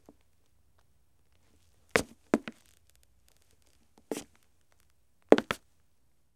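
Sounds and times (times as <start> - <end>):
footsteps on wood: 1.3 - 4.4, 5.3 - 5.7.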